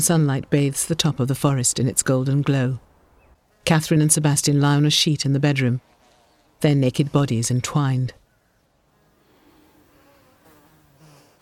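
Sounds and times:
speech: 0:00.0 - 0:02.9, 0:03.6 - 0:05.9, 0:06.6 - 0:08.2
flies buzzing around a dead horse in a forest: 0:08.8 - 0:11.4.

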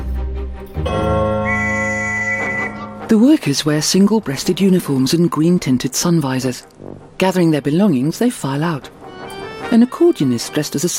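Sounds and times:
doorman blowing a whistle: 0:01.4 - 0:02.9
speech: 0:03.1 - 0:09.0, 0:09.7 - 0:10.9.

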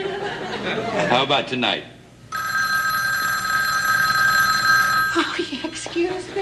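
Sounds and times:
laughter: 0:00.0 - 0:01.2, 0:05.1 - 0:06.2
speech: 0:00.7 - 0:01.9, 0:05.2 - 0:06.4
telephone bell ringing: 0:02.3 - 0:05.6.

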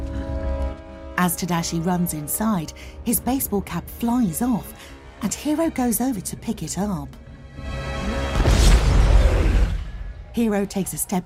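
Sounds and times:
speech: 0:01.2 - 0:07.7, 0:10.4 - 0:11.2
explosion blast engulfing a building in flames: 0:08.3 - 0:10.2.

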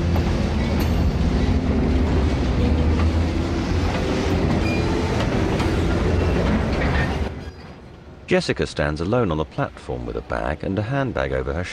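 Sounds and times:
train pulling away from a station: 0:00.0 - 0:08.1
speech: 0:08.3 - 0:11.7.

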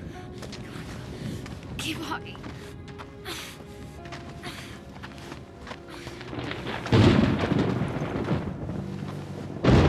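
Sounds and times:
speech: 0:01.8 - 0:02.5
thunder rumbling in a storm: 0:06.3 - 0:09.8.

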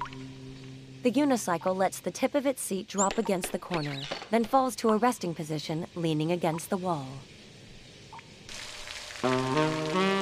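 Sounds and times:
sustained low buzzy musical tone: 0:00.0 - 0:02.3, 0:08.9 - 0:10.1
speech: 0:01.0 - 0:07.3
steady rain falling at night: 0:06.8 - 0:10.1.

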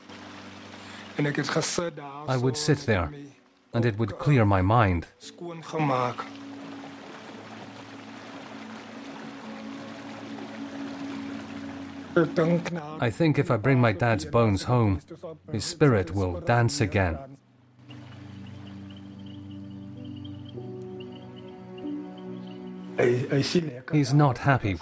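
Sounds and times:
river water rushing: 0:00.0 - 0:01.9, 0:05.8 - 0:13.0, 0:17.8 - 0:19.6
speech: 0:01.2 - 0:06.4, 0:12.2 - 0:17.4, 0:23.0 - 0:24.8.

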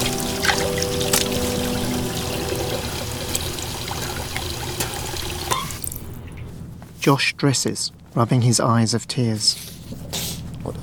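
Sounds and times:
water splashed by hand from a wash basin onto face: 0:00.0 - 0:06.1
speech: 0:07.0 - 0:09.8.

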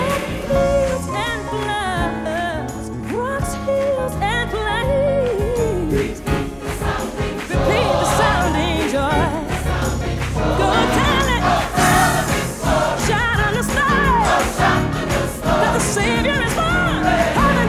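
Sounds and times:
choir singing gospel music: 0:00.0 - 0:01.6, 0:05.6 - 0:17.6
church audience clapping along to gospel music: 0:00.0 - 0:17.6
piano driving a gospel beat: 0:00.0 - 0:17.6.

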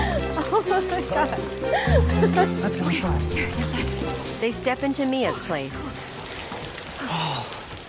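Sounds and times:
laughter: 0:00.0 - 0:04.2
steady rain falling with a dense even hiss: 0:00.0 - 0:07.8
speech: 0:00.7 - 0:06.0.

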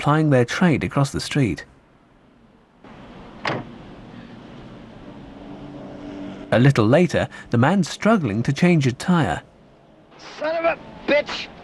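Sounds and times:
speech: 0:00.0 - 0:01.7, 0:06.6 - 0:09.5, 0:10.2 - 0:11.5
outdoor noise on a dark wet street: 0:00.0 - 0:11.6
car driver's door latch opening: 0:03.4 - 0:03.8.

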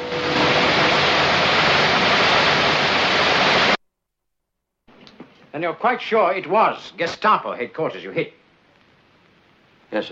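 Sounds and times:
water hosed onto dying flames: 0:00.0 - 0:03.8
speech: 0:05.6 - 0:08.4.

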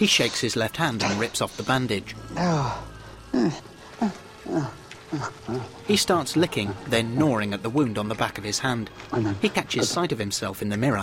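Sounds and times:
speech: 0:00.0 - 0:11.0
man growling like an animal in a men's toilet: 0:01.1 - 0:05.8.

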